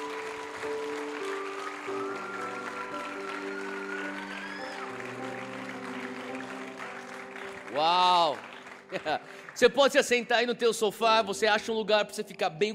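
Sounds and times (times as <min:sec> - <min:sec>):
sustained keyboard chords: 0:00.0 - 0:10.1
audience applause: 0:00.0 - 0:10.8
speech: 0:07.8 - 0:12.7.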